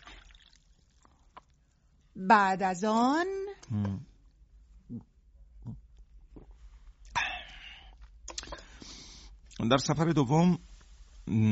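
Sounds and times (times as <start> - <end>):
water pouring into a cup: 0.0 - 1.4
speech: 2.2 - 4.1, 4.9 - 5.1, 9.6 - 10.6, 11.3 - 11.5.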